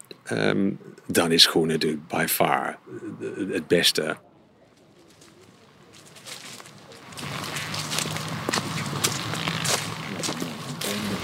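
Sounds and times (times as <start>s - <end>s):
speech: 0.3s - 4.3s
footsteps pushing through rustling leaves and brush in dense vegetation: 5.0s - 11.2s.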